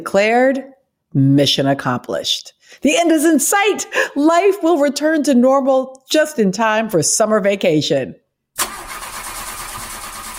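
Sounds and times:
speech: 0.0s - 8.7s
broken car engine cranking without starting: 8.6s - 10.3s.

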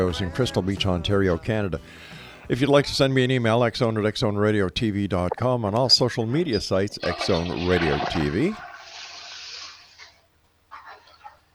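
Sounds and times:
speech: 0.0s - 8.7s
water gurgling and splashing after toilet flush: 6.2s - 11.5s
toilet flushing: 6.9s - 11.5s.

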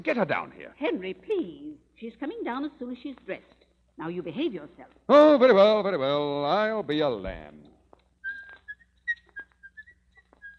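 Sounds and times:
speech: 0.0s - 7.7s
person whistling a short wandering tune: 8.2s - 10.5s.

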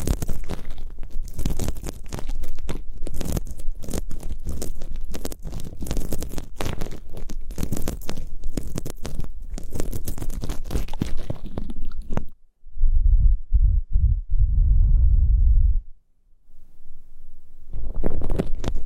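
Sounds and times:
ear picking crackling and scratching: 0.0s - 12.4s, 17.7s - 18.8s
low thumps and rubbing: 12.7s - 15.9s.

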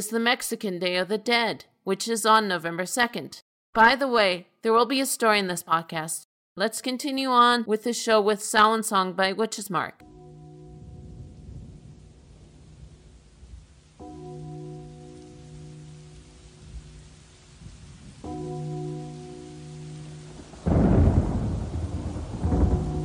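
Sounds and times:
speech: 0.0s - 10.1s
steady rain in a storm: 10.3s - 23.0s
low rumbling thunder in a storm: 10.7s - 23.0s.

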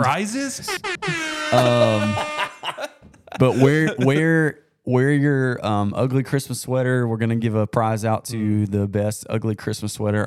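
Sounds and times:
speech: 0.0s - 2.8s, 3.4s - 10.2s
loud blaring air horn blast: 0.6s - 2.7s
laughter: 0.7s - 4.3s.

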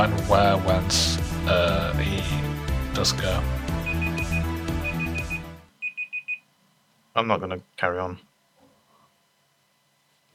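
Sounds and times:
speech: 0.0s - 3.7s, 7.2s - 8.3s
timer alarm beeping in high-pitched pulses: 3.8s - 6.4s.

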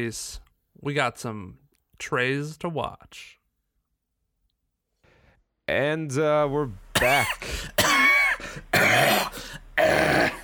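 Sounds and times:
speech: 0.0s - 3.4s, 5.7s - 9.4s
loud harsh coughs with raspy throat-clearing: 7.0s - 10.4s.

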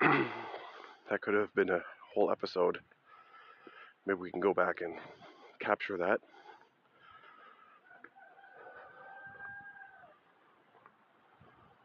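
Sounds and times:
speech: 1.1s - 3.0s, 4.0s - 6.4s
rooster crowing: 7.7s - 10.4s.

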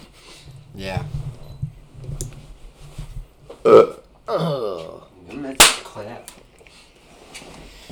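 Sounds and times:
speech: 0.8s - 1.2s, 3.6s - 4.6s
loud burp: 3.6s - 5.1s
sharp smacking clicks: 5.6s - 6.4s.

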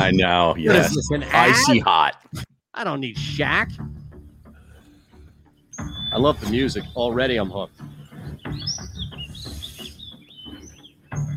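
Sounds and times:
speech: 0.0s - 4.0s, 5.8s - 8.9s
birds chirping and tweeting: 3.6s - 11.3s.

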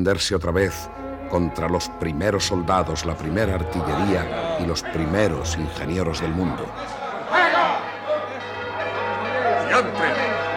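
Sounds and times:
speech: 0.0s - 7.0s
church tower bell ringing alarm in Zaragoza: 0.4s - 10.5s
crowd murmuring and chattering: 1.4s - 10.5s.

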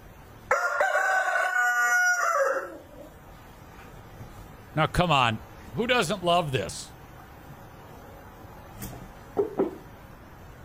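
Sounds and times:
rooster crowing cock-a-doodle-doo: 0.5s - 3.2s
speech: 4.8s - 6.9s.

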